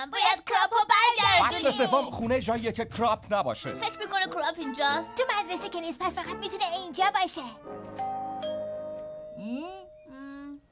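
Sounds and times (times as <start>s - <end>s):
speech: 0.0s - 0.9s, 1.7s - 8.0s, 9.4s - 9.9s
doorbell ding-dong chime: 8.0s - 10.2s
vocal sounds: 9.4s - 10.6s.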